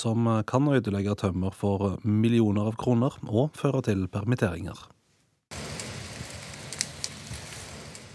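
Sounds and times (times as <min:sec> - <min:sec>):
speech: 0:00.0 - 0:05.0
forest fire burning: 0:05.5 - 0:08.1.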